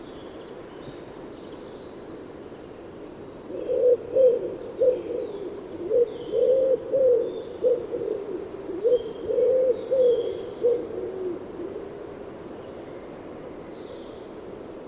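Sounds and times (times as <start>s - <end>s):
bird cooing with soft low hollow notes: 3.5s - 12.1s.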